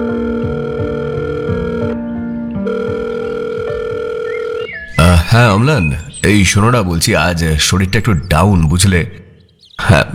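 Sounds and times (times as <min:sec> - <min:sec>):
layered droning telephone tones on a call to an office: 0:00.0 - 0:04.9
speech: 0:05.3 - 0:09.2, 0:09.9 - 0:10.1.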